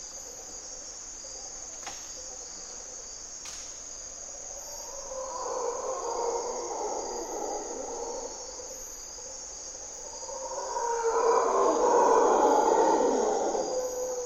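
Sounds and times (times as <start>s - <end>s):
steady high-pitched insect hum: 0.0s - 14.2s
mantled howler monkeys roaring at morning twilight in Costa Rican forest: 4.5s - 14.2s.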